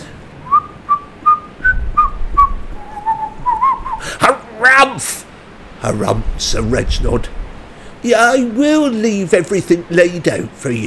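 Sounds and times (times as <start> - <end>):
faint low rumble: 0.0 - 4.7, 5.5 - 8.9
person whistling a festive tune: 0.5 - 4.1
speech: 5.8 - 7.4, 8.0 - 10.8.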